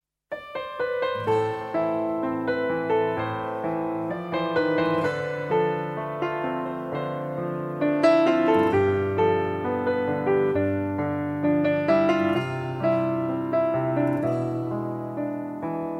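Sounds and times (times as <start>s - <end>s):
slow piano ringtone: 0.3s - 15.9s.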